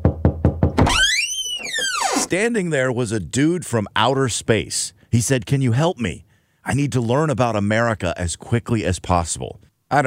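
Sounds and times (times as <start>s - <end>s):
firm knocking on a door: 0.0s - 0.9s
speech: 2.3s - 10.0s.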